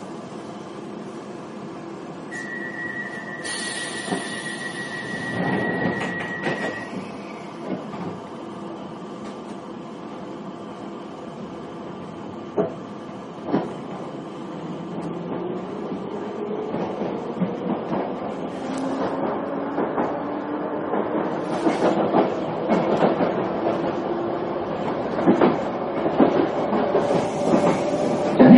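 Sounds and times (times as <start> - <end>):
London Underground train rumbling along at speed: 0.0 - 28.5.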